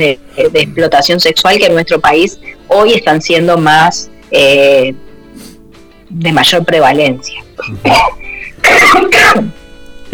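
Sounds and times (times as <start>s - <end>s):
speech: 0.0s - 5.5s, 6.1s - 10.1s
person recovering from the flu coughing: 7.4s - 9.3s.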